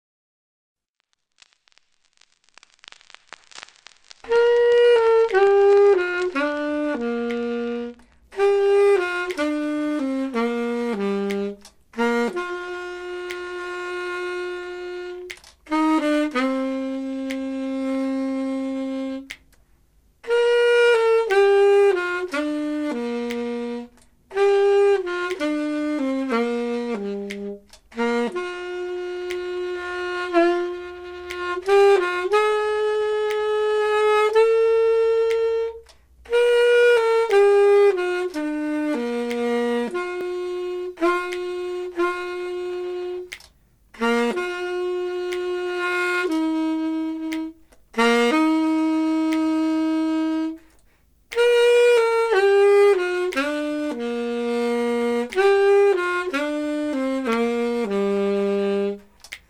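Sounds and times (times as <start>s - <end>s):
saxophone: 1.4s - 59.4s.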